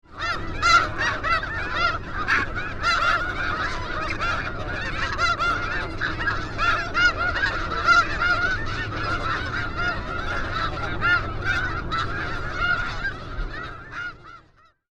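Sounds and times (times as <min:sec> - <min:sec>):
snow geese calling: 0:00.1 - 0:14.8.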